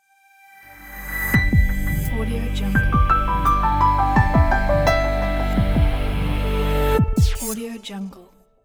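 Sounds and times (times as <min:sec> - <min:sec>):
elegant piano logo jingle: 0:01.4 - 0:07.0.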